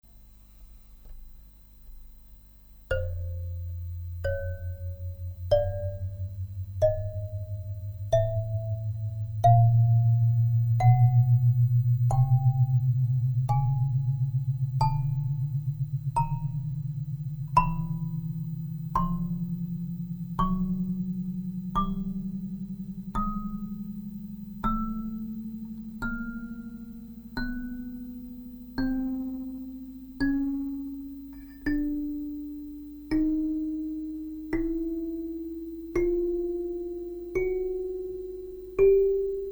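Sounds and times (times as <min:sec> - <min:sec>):
kalimba playing a scale: 0:02.9 - 0:39.5.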